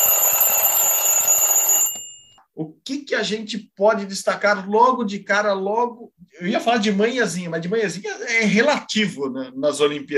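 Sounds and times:
alarm clock ringing: 0.0 - 2.4
speech: 3.1 - 10.1.

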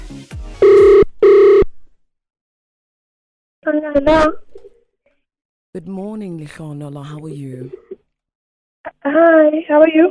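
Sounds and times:
electronic ring tones of an outgoing phone call: 0.6 - 1.7
speech: 3.8 - 4.4, 5.8 - 7.8, 9.0 - 10.0.

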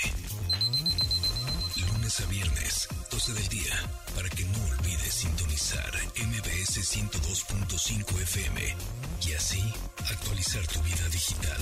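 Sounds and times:
low pulsing musical backdrop: 0.0 - 11.5
smart device alarm with a high electronic tone beeping: 0.4 - 2.4
speech: 2.2 - 11.5.

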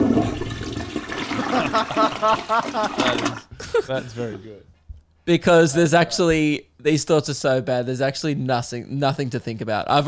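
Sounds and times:
toilet flushing: 0.0 - 3.4
laughter: 1.2 - 4.4
speech: 1.8 - 4.7, 5.3 - 10.0.

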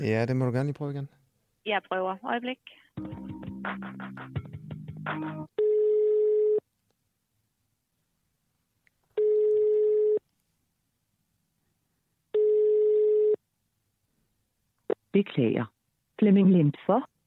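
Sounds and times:
speech: 0.0 - 4.4, 5.1 - 5.5, 15.2 - 17.1
hold music: 3.0 - 5.5
telephone ringback tone during call transfer from a central switchboard: 5.6 - 6.6, 9.2 - 10.2, 12.4 - 13.4.

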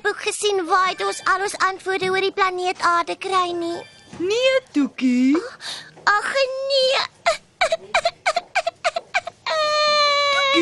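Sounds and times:
speech: 0.2 - 8.1
cartoon character crying: 7.7 - 10.6.

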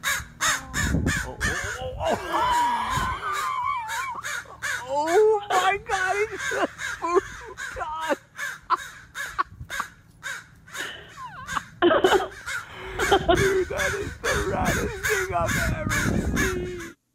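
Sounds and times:
angry mother crow cawing: 0.0 - 17.0
people exclaiming and laughing: 1.2 - 8.2, 10.8 - 17.0.

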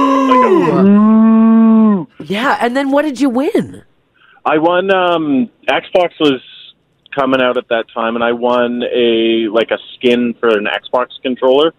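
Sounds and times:
person imitating a cow moo: 0.0 - 2.1
speech: 2.3 - 6.5, 7.2 - 11.7.

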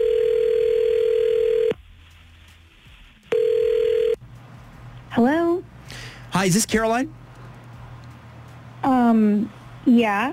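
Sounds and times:
telephone line ringing tone through the receiver: 0.0 - 1.8, 3.3 - 4.2
speech: 5.2 - 5.4, 6.4 - 7.2, 9.1 - 10.3.

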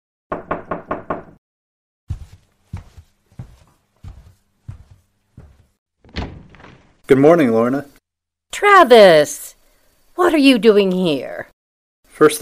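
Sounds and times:
sharp knocks on a door: 0.3 - 1.4, 6.1 - 7.0
heavier thuds on a door: 2.1 - 7.4
speech: 7.1 - 8.0, 8.6 - 9.4, 10.2 - 11.5, 12.2 - 12.4.

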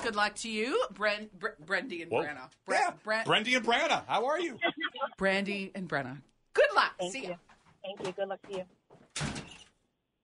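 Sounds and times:
speech: 0.1 - 9.3
door slamming shut: 9.1 - 9.7.

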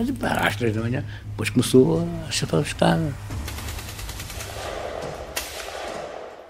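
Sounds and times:
speech: 0.0 - 3.5
gunshots: 3.3 - 6.4.

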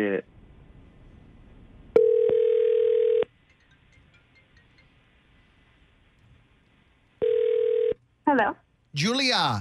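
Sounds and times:
speech: 0.0 - 0.3, 9.0 - 9.6
outgoing phone call ringback tone: 2.0 - 3.3, 7.2 - 8.0
quiet phone line hiss: 2.0 - 5.0, 7.2 - 8.0.

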